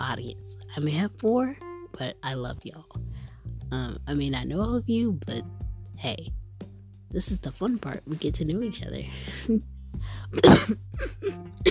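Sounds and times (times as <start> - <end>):
speech: 0.1 - 3.1, 3.7 - 6.4, 7.1 - 11.6
person coughing: 10.3 - 11.6.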